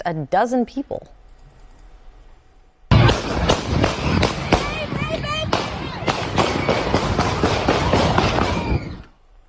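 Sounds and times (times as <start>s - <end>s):
speech: 0.0s - 1.2s
rapid burst of gunshots near a neighborhood festival in Toledo Ohio: 2.9s - 9.0s
frantic people shouting and crying out: 4.2s - 9.2s.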